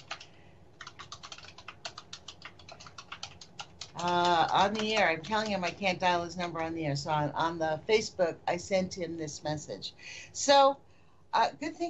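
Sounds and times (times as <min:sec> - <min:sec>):
typing on a computer keyboard: 0:00.0 - 0:06.1
speech: 0:04.0 - 0:11.8.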